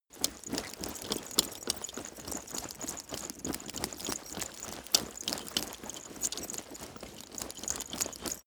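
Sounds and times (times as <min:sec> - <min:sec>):
soft fast leather and metal movement: 0:00.0 - 0:08.4.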